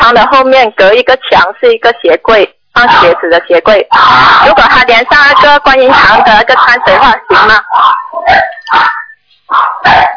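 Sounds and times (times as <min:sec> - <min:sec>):
speech: 0:00.1 - 0:10.1
dog barking loudly and sharply: 0:04.0 - 0:10.1.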